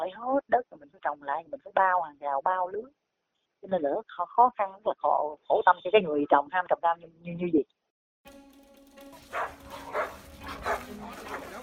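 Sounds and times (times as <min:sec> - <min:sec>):
speech: 0:00.1 - 0:03.0, 0:03.6 - 0:08.4
neighbour's pack of dogs barking: 0:09.1 - 0:11.6.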